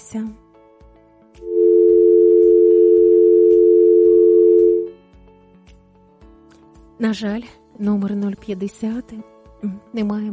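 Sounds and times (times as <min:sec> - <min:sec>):
faint rhythmic music: 0:00.0 - 0:10.3
speech: 0:00.1 - 0:00.4, 0:07.0 - 0:10.3
telephone dial tone after caller hung up: 0:01.5 - 0:04.9.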